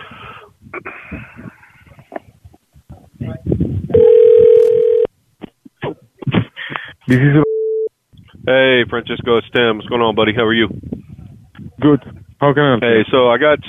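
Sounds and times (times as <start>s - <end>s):
telephone dialing tones: 4.0s - 5.1s
speech: 7.1s - 7.5s, 8.5s - 10.9s, 11.8s - 13.6s.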